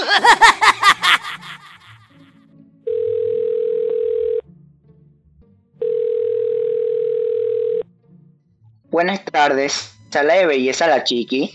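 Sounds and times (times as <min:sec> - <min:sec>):
laughter: 0:00.0 - 0:02.3
speech: 0:00.2 - 0:00.4, 0:09.0 - 0:11.5
phone ringback tones during call placed to a beauty salon: 0:02.9 - 0:04.4, 0:05.8 - 0:07.8.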